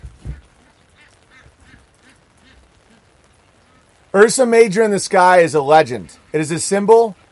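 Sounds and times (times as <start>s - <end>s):
ducks squawking and quacking during mating: 0.2s - 4.0s
speech: 4.1s - 7.2s.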